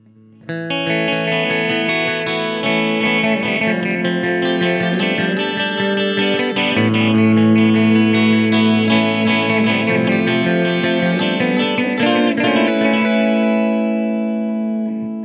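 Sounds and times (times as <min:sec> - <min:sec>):
echo: 0:00.0 - 0:15.2.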